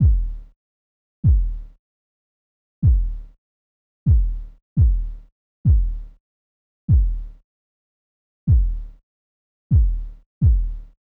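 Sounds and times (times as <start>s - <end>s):
kick drum: 0.0s - 0.6s, 1.2s - 1.8s, 2.8s - 3.4s, 4.1s - 6.2s, 6.9s - 7.4s, 8.5s - 9.0s, 9.7s - 11.0s.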